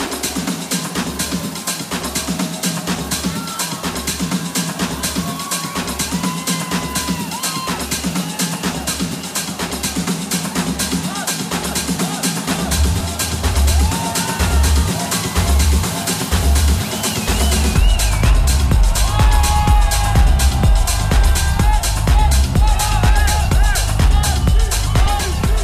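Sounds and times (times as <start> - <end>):
big crowd yelling and cheering at live DJ set: 0.0 - 25.6
pounding four-on-the-floor electronic beat at live DJ set: 0.0 - 25.6
bass kicks: 16.4 - 25.6.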